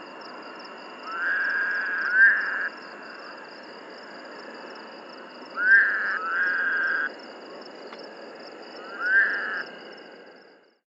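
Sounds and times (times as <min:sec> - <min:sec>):
steady high-pitched background droning: 0:00.0 - 0:10.6
Woodhouse's toad calling: 0:01.0 - 0:02.8, 0:05.6 - 0:07.1, 0:08.8 - 0:09.7.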